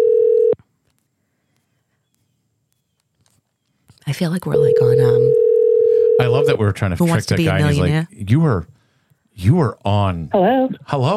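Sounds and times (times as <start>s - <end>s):
outgoing phone call electronic ringing tone: 0.0s - 0.6s, 4.5s - 6.6s
speech: 4.1s - 5.5s, 6.2s - 8.8s, 9.4s - 11.1s.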